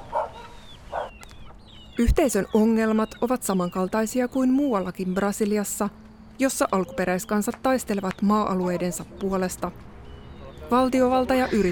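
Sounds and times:
abandoned dogs barking on Guarani community land in São Paulo, Brazil: 0:00.0 - 0:01.2, 0:08.6 - 0:09.1
speech: 0:02.0 - 0:09.9, 0:10.7 - 0:11.7.

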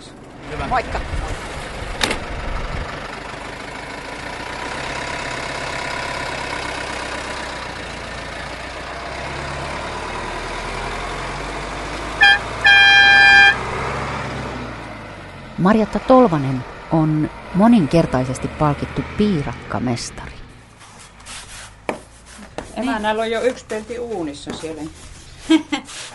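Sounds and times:
mobile shop van engine rumbling as it pulls away: 0:00.0 - 0:26.1
speech: 0:00.6 - 0:01.2, 0:15.6 - 0:20.3, 0:23.0 - 0:26.0
thump: 0:02.0 - 0:02.3
mobile shop van horn toots: 0:12.2 - 0:13.7
laughter: 0:25.4 - 0:26.1.

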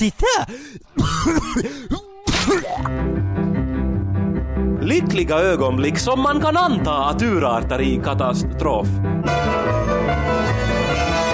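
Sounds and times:
speech: 0:00.0 - 0:03.1, 0:04.9 - 0:09.9
person hacking forcefully from the throat: 0:01.0 - 0:02.9
music: 0:02.4 - 0:11.3.

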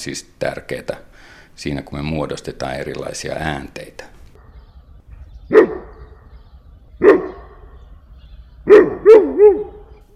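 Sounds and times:
speech: 0:00.0 - 0:04.2
dog barking: 0:05.5 - 0:06.3, 0:07.0 - 0:07.7, 0:08.7 - 0:09.9.

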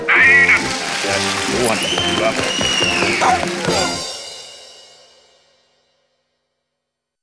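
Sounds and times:
crowd applauding: 0:00.0 - 0:04.2
people cheering: 0:00.0 - 0:04.2
whistle: 0:00.1 - 0:04.0
speech: 0:01.6 - 0:04.1.

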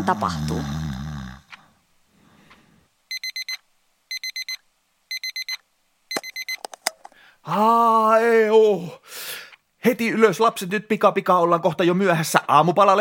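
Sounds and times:
speech: 0:00.0 - 0:00.8, 0:07.4 - 0:09.2, 0:09.8 - 0:12.9
sleeping father snoring: 0:00.0 - 0:01.6
breathy rustling: 0:00.0 - 0:02.9
alarm clock on a bedside table beeping: 0:03.1 - 0:06.6.

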